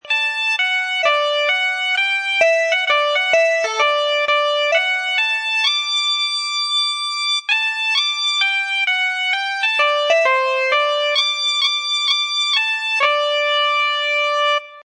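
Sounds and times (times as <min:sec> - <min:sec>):
bagpipes melody in D: 0:00.0 - 0:14.8.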